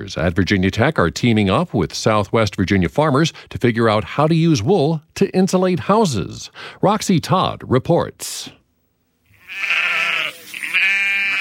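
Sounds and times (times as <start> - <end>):
speech: 0.0 - 8.6, 9.5 - 10.1
female sheep bleating on a farm in Pulaski County Southwest Virginia: 9.3 - 11.3.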